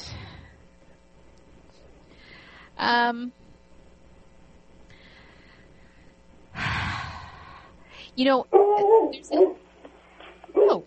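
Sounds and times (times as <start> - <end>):
speech: 2.8 - 3.4, 8.2 - 9.6
dog giving yelping barks with a whimpering edge: 8.5 - 9.7, 10.4 - 10.8.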